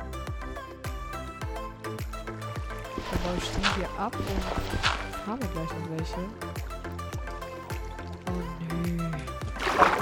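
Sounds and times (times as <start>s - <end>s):
video game music with low thumping notes: 0.0s - 9.9s
video game water splashing as something falls in: 2.9s - 5.6s, 6.4s - 9.9s
speech: 3.0s - 6.6s.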